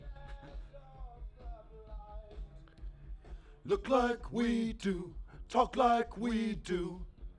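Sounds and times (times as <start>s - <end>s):
prechorus backing vocals: 3.6s - 7.2s.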